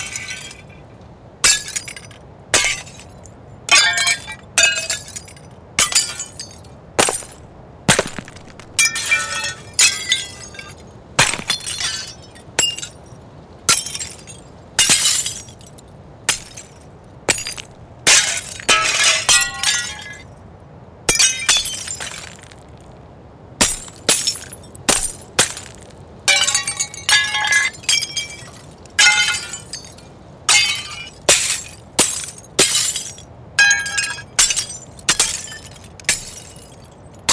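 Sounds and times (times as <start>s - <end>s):
glass breaking and shattering: 0.0s - 0.8s, 1.4s - 13.1s, 13.7s - 20.2s, 21.1s - 22.6s, 23.6s - 37.3s
tinkling glass shards falling and settling: 0.0s - 0.8s, 1.4s - 20.2s, 21.1s - 22.6s, 23.6s - 37.3s.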